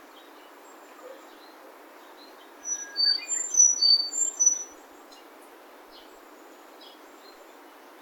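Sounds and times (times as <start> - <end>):
steady background hiss: 0.0 - 8.0
Sakhalin leaf warbler song in Kitamoto city: 2.6 - 4.8.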